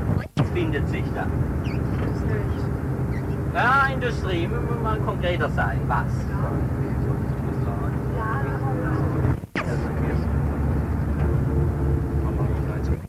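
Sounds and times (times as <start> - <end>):
freight train pulling in: 0.0 - 13.0
speech: 0.6 - 2.8, 3.6 - 6.8
faint metallic squealing of freight train: 1.6 - 2.2, 3.0 - 3.5.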